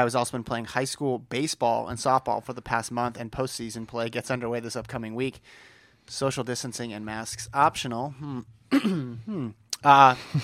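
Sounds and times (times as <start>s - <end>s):
speech: 0.0s - 10.4s
person clearing throat in rasping bursts: 8.3s - 9.6s.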